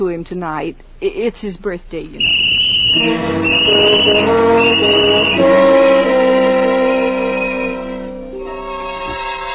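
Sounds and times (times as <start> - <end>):
speech: 0.0 - 6.4
toy whistle blown by a boy: 2.2 - 8.4.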